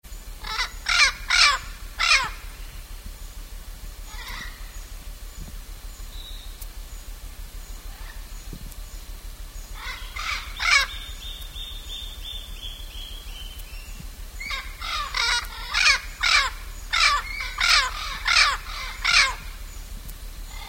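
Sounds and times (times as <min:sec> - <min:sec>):
blue-fronted parrot calling: 0:00.4 - 0:02.5, 0:04.1 - 0:04.7, 0:09.8 - 0:13.6, 0:14.4 - 0:19.5.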